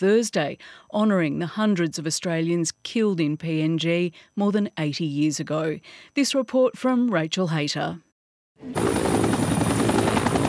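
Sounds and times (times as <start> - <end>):
speech: 0.0 - 9.4
helicopter engine and rotor at Kokoda village in Papua New Guinea: 8.6 - 10.4.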